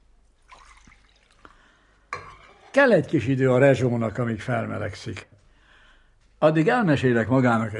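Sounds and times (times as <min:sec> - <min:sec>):
water dripping and splashing: 0:00.4 - 0:01.6
water poured into a pot for coffee: 0:00.4 - 0:03.3
speech: 0:02.8 - 0:05.4, 0:06.4 - 0:07.7.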